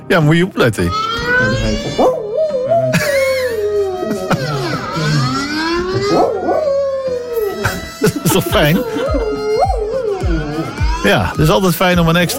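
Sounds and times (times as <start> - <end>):
speech: 0.1 - 2.2, 8.4 - 9.1, 11.0 - 12.3
dog howling with yips: 0.8 - 11.8
laughter: 2.7 - 12.3
siren-like whine: 4.5 - 8.8.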